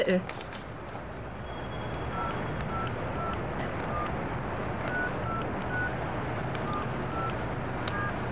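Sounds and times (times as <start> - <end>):
speech: 0.1 - 0.4
short electronic beeps of a phone number being dialed on a keypad: 1.7 - 8.2.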